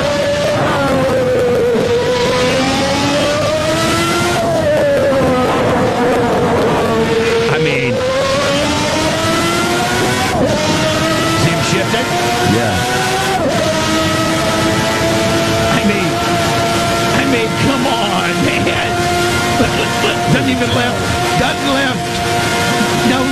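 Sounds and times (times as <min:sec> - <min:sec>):
race car engine accelerating through the gears on a racetrack: 0:00.0 - 0:23.3
laughter: 0:11.3 - 0:12.8, 0:17.1 - 0:23.3.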